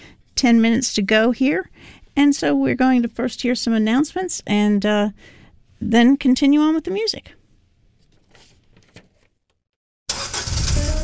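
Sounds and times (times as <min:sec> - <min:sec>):
speech: 0:00.4 - 0:07.4
old worn car engine starting: 0:10.1 - 0:11.0.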